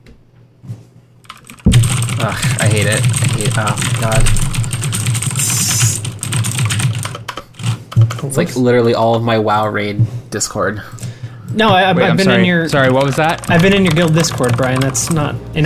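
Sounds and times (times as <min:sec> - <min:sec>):
typing on a brand new mechanical keyboard: 0:01.2 - 0:08.3, 0:12.7 - 0:15.3
speech: 0:02.2 - 0:04.5, 0:08.0 - 0:15.6.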